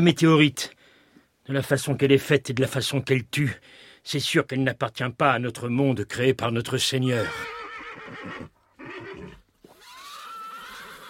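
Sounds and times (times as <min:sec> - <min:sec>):
speech: 0:00.0 - 0:00.8, 0:01.5 - 0:08.6
panicking horses neighing and whinnying: 0:07.2 - 0:11.0.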